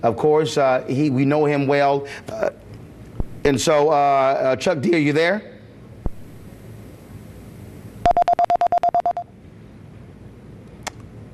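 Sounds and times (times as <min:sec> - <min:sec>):
speech: 0:00.0 - 0:02.6, 0:03.4 - 0:05.5
low noise: 0:00.0 - 0:11.3
telephone keypad dialing tones: 0:08.1 - 0:09.2.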